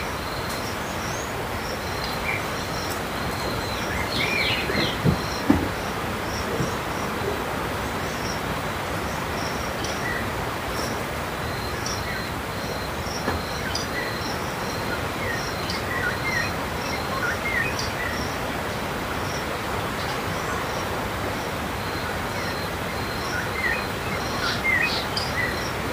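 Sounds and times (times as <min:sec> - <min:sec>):
birds chirping beside the Zambezi River: 0:00.0 - 0:25.9
dense wash of low natural noise beside the Zambezi River: 0:00.0 - 0:25.9
brief louder knock: 0:04.8 - 0:05.8.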